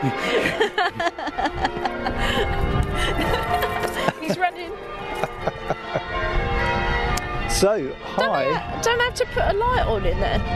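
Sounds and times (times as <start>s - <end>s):
speech: 0.0s - 3.3s, 7.6s - 10.5s
laughter: 0.0s - 6.2s
church bells ringing in a bell tower: 0.0s - 10.5s.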